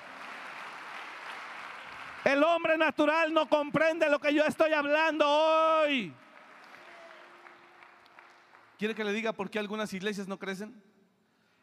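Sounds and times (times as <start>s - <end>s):
audience applauding: 0.0s - 2.8s, 6.2s - 9.0s
speech: 2.3s - 6.2s, 8.8s - 10.9s.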